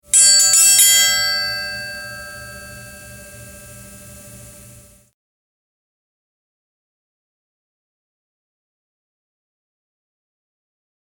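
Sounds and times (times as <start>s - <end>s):
chimes: 0.1s - 5.0s
triangle: 0.1s - 5.1s.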